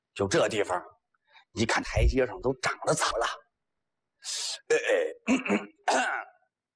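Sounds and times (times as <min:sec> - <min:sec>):
speech: 0:00.2 - 0:03.4, 0:04.2 - 0:06.3
performer's gruff throat-clearing coughs: 0:05.2 - 0:06.4.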